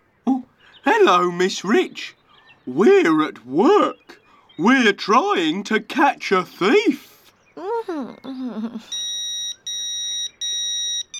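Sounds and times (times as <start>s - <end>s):
speech: 0.9s - 7.0s, 7.8s - 9.1s
phone message notification high-pitched electronic tones: 8.9s - 11.1s.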